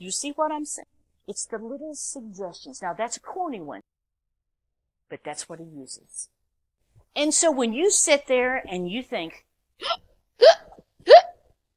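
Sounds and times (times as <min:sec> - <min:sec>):
speech: 0:00.0 - 0:03.9, 0:05.1 - 0:06.4, 0:07.1 - 0:11.3
person hiccuping: 0:09.8 - 0:11.4.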